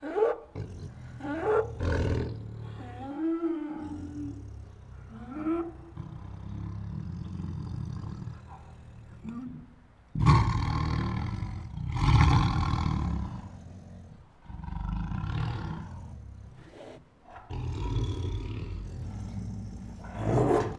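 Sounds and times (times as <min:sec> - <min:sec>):
Siberian tiger protective growls: 0:00.0 - 0:20.7.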